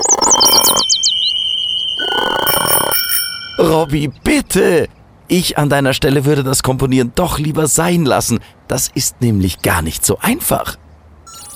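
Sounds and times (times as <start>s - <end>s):
android imitating a croaky frog-like rasp: 0.0s - 0.8s, 2.0s - 3.0s
android imitating a warbling bird-like trill: 0.0s - 3.9s
speech: 0.4s - 1.1s, 3.6s - 10.8s
android imitating a steady ringing bicycle-bell tone: 2.0s - 3.9s.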